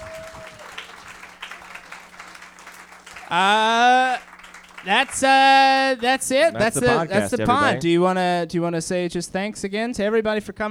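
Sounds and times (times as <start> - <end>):
crowd cheering and whooping: 0.0 - 4.9
audience applauding: 0.0 - 7.0
speech: 3.3 - 4.0, 4.8 - 10.6.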